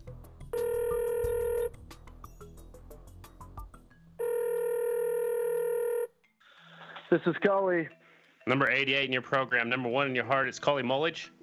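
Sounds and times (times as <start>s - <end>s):
electronic telephone ringing while a call is placed: 0.5s - 1.7s, 4.2s - 6.2s
speech: 7.1s - 11.4s.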